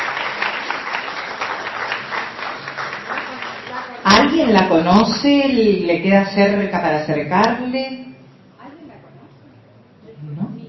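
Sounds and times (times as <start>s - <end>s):
audience applause: 0.0s - 4.3s
speech: 4.3s - 8.0s.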